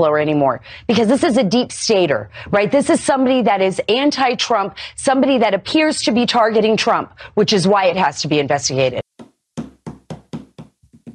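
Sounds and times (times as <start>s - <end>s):
speech: 0.0s - 9.0s
firm knocks on a door: 9.6s - 11.1s.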